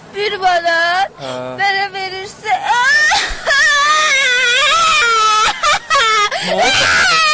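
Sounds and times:
speech: 0.2s - 1.8s
girl crying after losing a coin: 2.4s - 7.3s.

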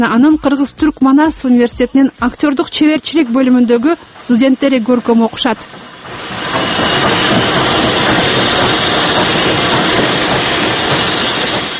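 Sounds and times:
speech: 0.0s - 6.8s
train arriving and stopping, rail wheels rumbling and clattering: 0.0s - 11.7s
hiss: 5.6s - 11.7s.

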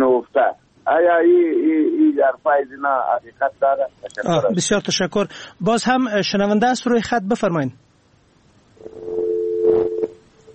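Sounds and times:
noise bursts: 0.0s - 10.5s
speech: 0.3s - 7.9s
steady phone-line tone after a dropped call: 8.8s - 10.5s.

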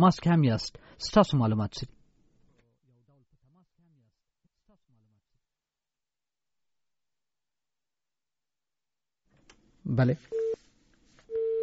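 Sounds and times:
speech: 0.0s - 2.0s, 9.9s - 10.4s
telephone busy tone beeps after a call line drops: 10.3s - 10.6s, 11.3s - 11.6s.

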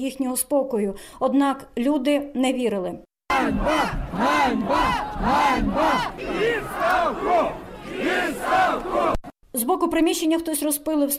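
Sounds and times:
speech: 0.0s - 11.1s
large protest crowd chanting a slogan in unison: 3.3s - 9.3s.

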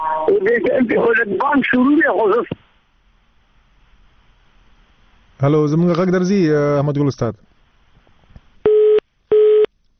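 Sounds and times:
speech: 0.2s - 2.6s, 5.4s - 7.5s
telephone busy tone after a dropped call: 8.7s - 9.7s.

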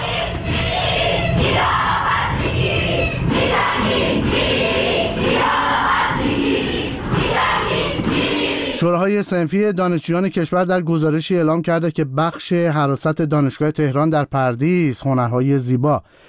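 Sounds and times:
crowd of university students chanting at a demonstration in Iran: 0.0s - 8.9s
speech: 8.8s - 16.2s.

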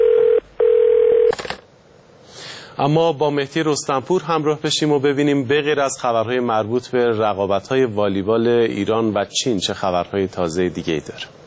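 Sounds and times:
telephone line tone for an incoming call: 0.0s - 1.6s
speech: 2.8s - 11.4s.

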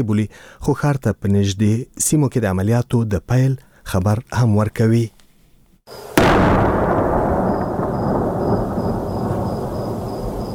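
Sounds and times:
speech: 0.0s - 5.2s, 5.9s - 6.6s
heavy artillery boom during fighting near a city in Helmand: 6.2s - 10.5s.

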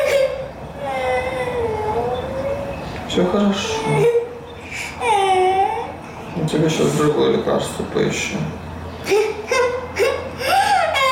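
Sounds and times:
young girl whimpering and crying: 0.0s - 2.7s, 3.6s - 6.1s, 9.0s - 11.1s
speech: 3.2s - 4.2s, 6.5s - 9.3s.

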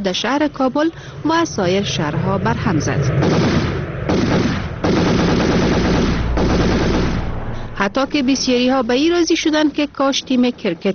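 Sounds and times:
speech: 0.0s - 3.7s, 7.8s - 10.9s
celebratory machine gun fire in Kabul after a cricket victory: 3.2s - 7.4s.

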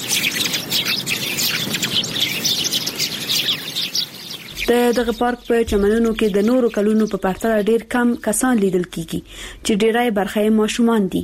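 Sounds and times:
many small birds chirping and tweeting in a park: 0.0s - 11.2s
speech: 4.7s - 11.2s.

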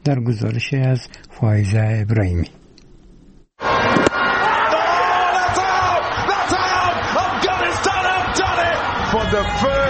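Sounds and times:
speech: 0.0s - 2.6s
large crowd cheering in street celebration of cricket team's semi-final: 3.6s - 9.8s.

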